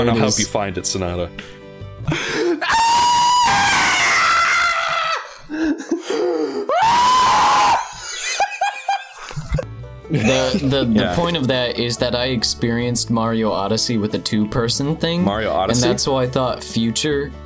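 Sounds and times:
speech: 0.0 - 2.8, 10.1 - 17.4
person screaming high-pitched: 2.5 - 5.5, 6.6 - 8.0
laughter: 7.8 - 11.4.

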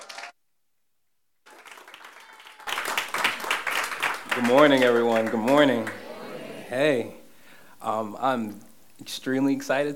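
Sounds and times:
church congregation applauding: 0.0 - 0.3, 1.5 - 6.7
speech: 4.4 - 6.0, 6.7 - 7.2, 7.8 - 9.9.

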